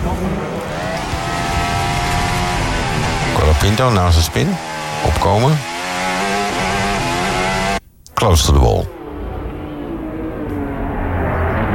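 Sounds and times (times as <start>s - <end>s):
racing car engines roaring around a track: 0.0s - 7.8s, 8.5s - 11.7s
speech: 3.6s - 5.7s, 8.2s - 9.0s.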